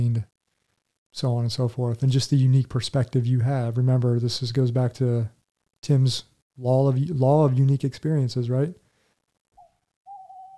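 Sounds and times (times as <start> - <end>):
speech: 1.1 - 8.8
owl hooting: 9.6 - 10.5.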